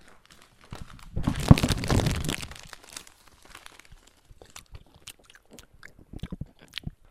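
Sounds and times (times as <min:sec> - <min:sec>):
chocolate wrapper crinkling and tearing: 0:00.0 - 0:05.2
crunchy bites of chocolate: 0:00.0 - 0:07.0
moist chewing of chocolate: 0:03.8 - 0:07.0.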